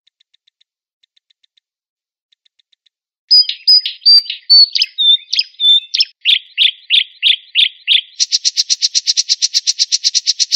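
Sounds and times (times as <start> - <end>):
Oriental magpie-robin singing: 3.3 - 10.5.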